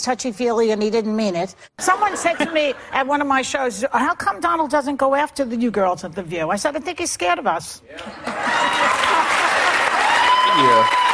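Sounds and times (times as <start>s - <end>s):
speech: 0.0s - 9.2s, 10.6s - 11.0s
large studio audience applause: 8.2s - 11.1s.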